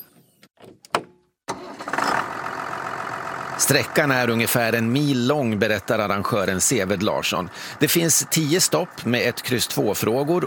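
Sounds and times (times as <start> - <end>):
heavy tractor engine cranking and starting at a tractor quiz-trail event: 1.5 - 10.4
speech: 3.6 - 10.4.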